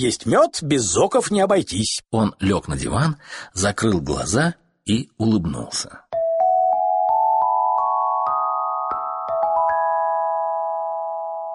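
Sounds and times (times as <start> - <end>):
speech: 0.0 - 6.0
clear chime ringing in a rising run of struck notes: 6.2 - 11.5.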